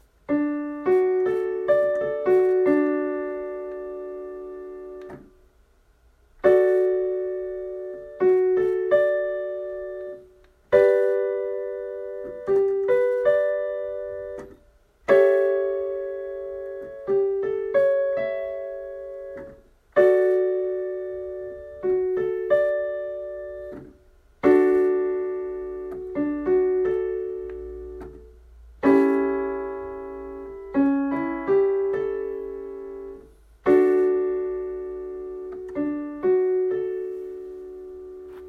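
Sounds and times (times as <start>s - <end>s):
D major chords: 0.0s - 5.4s, 6.4s - 38.4s.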